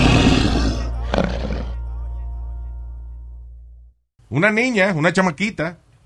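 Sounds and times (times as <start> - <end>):
loud rough snoring: 0.0 - 1.8
speech: 4.3 - 5.8.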